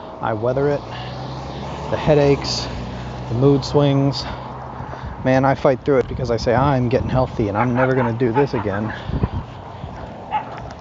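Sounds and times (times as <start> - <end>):
speech: 0.2 - 1.1, 1.9 - 4.4, 5.2 - 9.3
puppy giving a short high bark: 7.6 - 9.0, 10.3 - 10.6.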